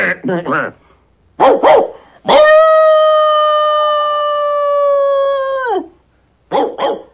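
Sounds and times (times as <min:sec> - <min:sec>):
dog barking sharply: 0:01.4 - 0:02.1, 0:06.5 - 0:07.1
dog howling long and sustained: 0:01.5 - 0:06.0.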